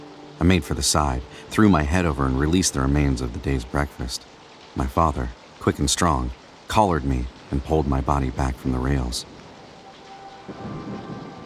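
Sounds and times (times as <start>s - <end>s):
steady hissing rain in a thunderstorm: 0.0s - 11.4s
speech: 0.4s - 9.4s
deep rumble of thunder: 10.3s - 11.4s.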